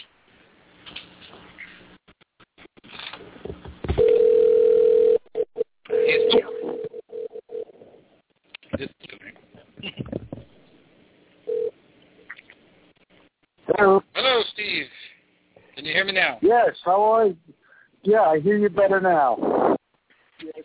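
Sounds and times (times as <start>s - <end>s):
clicks on a telephone line: 4.0s - 4.7s
telephone dial tone while a dropped call is being reconnected: 4.0s - 5.2s, 5.9s - 7.7s, 11.5s - 11.7s
telephone line noise: 4.0s - 7.8s, 11.5s - 11.7s
speech: 16.3s - 17.4s, 18.0s - 19.7s.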